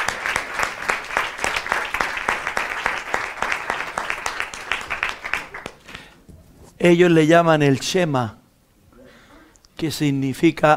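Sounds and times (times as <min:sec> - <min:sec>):
audience applause: 0:00.0 - 0:06.1
speech: 0:06.8 - 0:08.4, 0:09.8 - 0:10.7.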